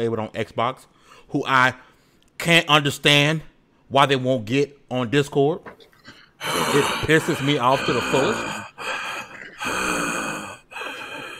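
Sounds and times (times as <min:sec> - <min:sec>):
speech: 0:00.0 - 0:05.8, 0:06.4 - 0:08.9
loud breathing gasp: 0:06.3 - 0:11.3.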